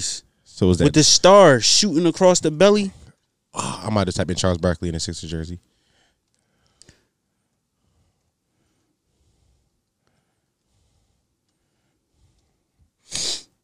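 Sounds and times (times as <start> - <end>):
speech: 0.0 - 3.0, 3.6 - 5.7
sharp sniff: 7.9 - 13.6.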